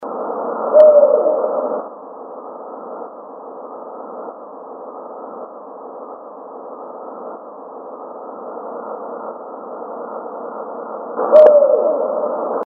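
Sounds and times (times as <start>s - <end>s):
barred owl hooting one note: 0.6s - 1.9s, 11.2s - 12.6s.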